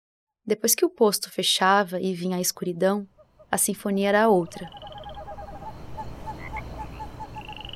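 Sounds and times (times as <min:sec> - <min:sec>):
speech: 0:00.5 - 0:04.9
chorus of toads and frogs croaking at night by a highway gas station: 0:03.0 - 0:07.7
higher trilling calls: 0:03.1 - 0:07.7.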